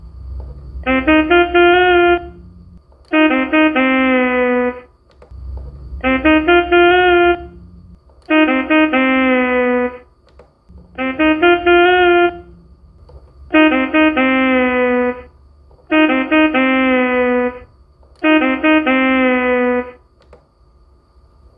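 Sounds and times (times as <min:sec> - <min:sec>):
saxophone player music: 0:00.8 - 0:04.9, 0:06.0 - 0:10.1, 0:10.8 - 0:12.7, 0:13.5 - 0:20.0.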